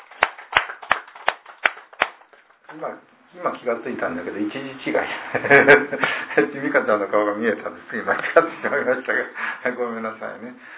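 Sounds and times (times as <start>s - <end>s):
group at a worship service clapping in a steady rhythm: 0.0s - 2.7s
speech: 2.7s - 10.7s.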